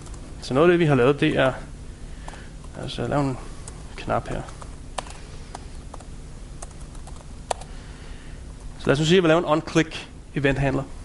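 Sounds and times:
speech: 0.4s - 1.7s, 2.8s - 4.6s, 8.9s - 11.0s
typing on a computer keyboard: 4.4s - 7.7s.

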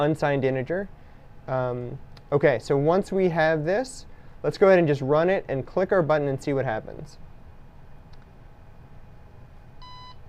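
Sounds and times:
speech: 0.0s - 7.3s
steady low hum: 0.0s - 10.2s
single short electronic beep: 9.8s - 10.2s.

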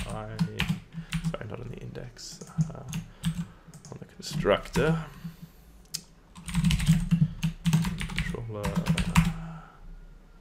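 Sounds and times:
typing code on a computer keyboard: 0.0s - 1.4s, 2.3s - 5.0s, 6.4s - 9.4s
faint low hum: 0.0s - 10.3s
speech: 4.4s - 5.2s.

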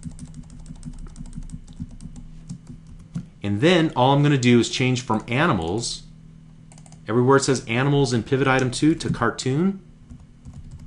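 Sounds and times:
typing on a computer keyboard: 0.0s - 3.2s, 6.7s - 7.0s, 10.1s - 10.8s
speech: 3.4s - 6.1s, 7.1s - 9.9s.

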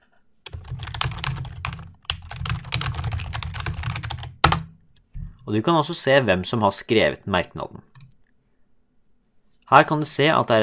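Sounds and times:
typing on a computer keyboard: 0.5s - 4.7s
speech: 5.5s - 7.9s, 9.7s - 10.6s.

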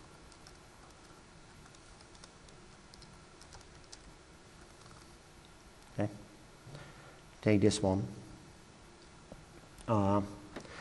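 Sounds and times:
steady hiss: 0.0s - 10.7s
typing a password on a computer keyboard: 0.3s - 5.1s
speech: 6.0s - 6.3s, 7.4s - 8.2s, 9.9s - 10.4s.

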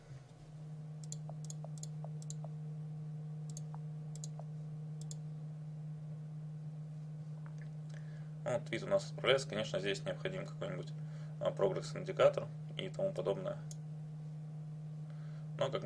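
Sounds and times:
steady low electrical hum: 0.0s - 15.8s
typing on a computer keyboard: 3.5s - 4.4s
speech: 8.4s - 13.8s, 15.6s - 15.8s.

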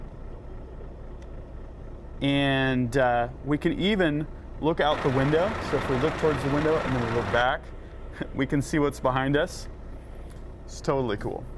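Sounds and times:
speech: 2.2s - 9.8s, 10.7s - 11.5s
truck engine starting in a driving video game: 3.8s - 8.4s.

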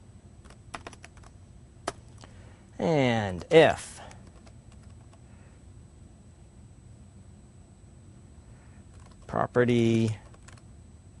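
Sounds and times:
rapid typing on a computer keyboard as code is entered: 0.4s - 1.3s, 4.1s - 5.2s, 8.9s - 10.7s
speech: 2.8s - 3.9s, 9.3s - 10.2s.

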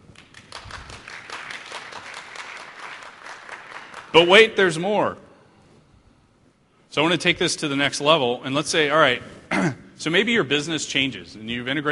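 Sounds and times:
crowd applauding: 0.0s - 4.6s
speech: 4.1s - 5.2s, 6.9s - 11.9s.

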